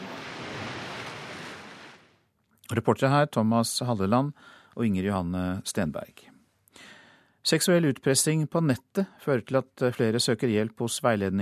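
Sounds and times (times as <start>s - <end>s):
ocean surf waves crashing: 0.0s - 2.2s
speech: 2.7s - 11.4s.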